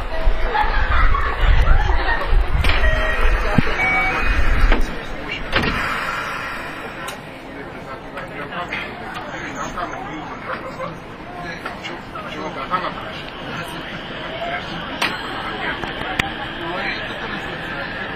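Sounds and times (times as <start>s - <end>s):
laughter: 0.1s - 4.6s, 10.5s - 11.1s
225 series 0 subseries train doors closing: 2.2s - 7.4s, 11.6s - 18.1s
pressure reduction mechanism working as train doors close: 5.5s - 7.2s.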